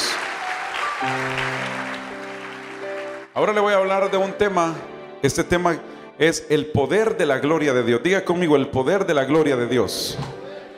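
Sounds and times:
audience applause in a church: 0.0s - 3.4s
speech: 1.0s - 1.6s, 3.4s - 10.4s.

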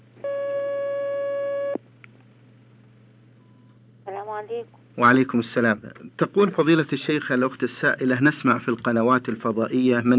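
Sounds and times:
electronic telephone line tone as an incoming call is connected: 0.2s - 1.8s
speech: 4.4s - 10.1s.

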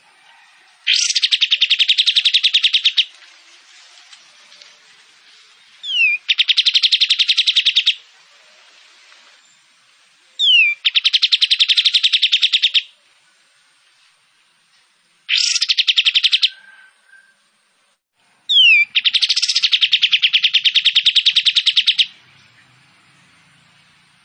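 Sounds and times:
kapas tembak in full song with falling whistles and buzzy trills: 0.9s - 3.1s, 5.8s - 8.0s, 10.4s - 12.9s, 15.3s - 17.5s, 18.5s - 22.6s.

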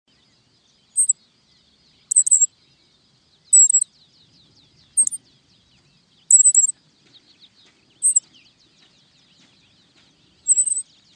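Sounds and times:
faint background chirps: 0.1s - 11.1s
black-masked finch Coryphaspiza melanotis giving sharp very high brief calls: 2.1s - 2.5s, 3.5s - 3.9s, 4.9s - 5.2s, 6.3s - 6.7s, 8.0s - 8.3s, 10.4s - 10.9s.

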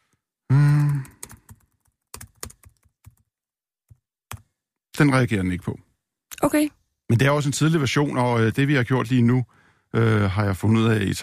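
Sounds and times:
person humming: 0.5s - 1.2s
typing on a computer keyboard: 0.8s - 3.3s
speech: 5.0s - 11.2s.

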